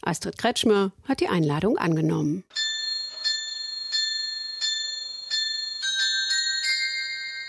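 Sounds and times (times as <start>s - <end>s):
speech: 0.0s - 2.6s
harbour clock carillon chiming a bell melody: 2.5s - 7.4s.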